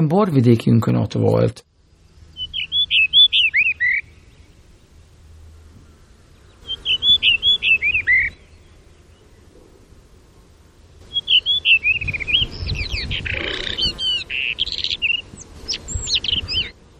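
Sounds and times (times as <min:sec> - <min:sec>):
speech: 0:00.0 - 0:01.7
Rufous-tailed rock thrush song: 0:01.9 - 0:05.0, 0:05.6 - 0:09.8, 0:11.0 - 0:16.8.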